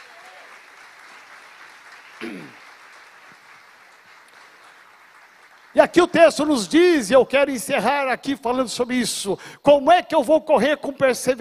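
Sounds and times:
audience applauding: 0.0s - 6.7s
speech: 2.2s - 2.6s, 5.8s - 11.3s.

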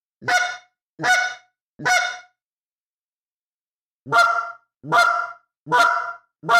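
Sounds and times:
goose clucks blown on a goose call by tongue popping: 0.2s - 2.3s, 4.1s - 6.5s.

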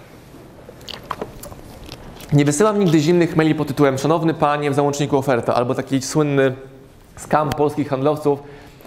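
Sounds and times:
sipping water: 0.6s - 3.1s
wet mouth clicks: 0.7s - 2.5s
speech: 2.3s - 8.6s.

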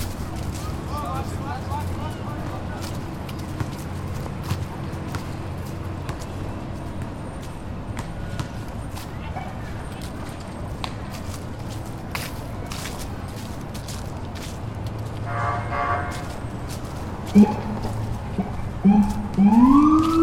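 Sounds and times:
low rumble of traffic in a city park: 0.0s - 20.2s
rising siren-like wail: 17.3s - 20.2s.

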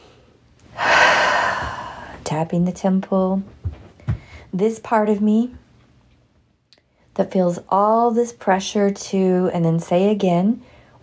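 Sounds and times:
big deep breath drawn in during a tapping relaxation exercise: 0.8s - 2.2s
speech: 2.3s - 3.8s, 4.5s - 5.6s, 7.2s - 11.0s.

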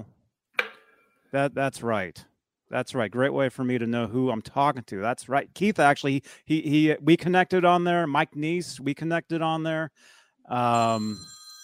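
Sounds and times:
speech: 1.3s - 11.4s
telephone ringing: 10.7s - 11.6s.

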